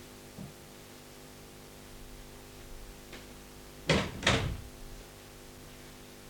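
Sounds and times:
door swinging shut with thuds: 0:03.9 - 0:04.7.

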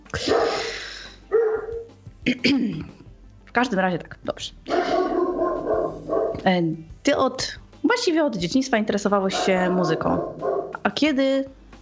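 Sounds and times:
dog barking in a village: 0:00.2 - 0:01.9, 0:04.7 - 0:06.5, 0:09.3 - 0:10.9
speech: 0:02.3 - 0:03.0, 0:03.6 - 0:05.0, 0:06.4 - 0:11.6.

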